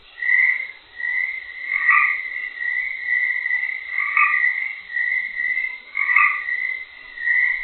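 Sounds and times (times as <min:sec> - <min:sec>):
chorus of Baja California chorus frogs croaking: 0:00.0 - 0:07.6.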